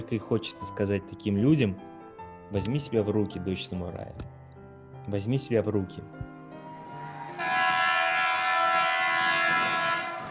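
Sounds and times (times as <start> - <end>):
speech: 0.0 - 4.4, 5.0 - 6.3
departing train horn droning: 6.7 - 10.2.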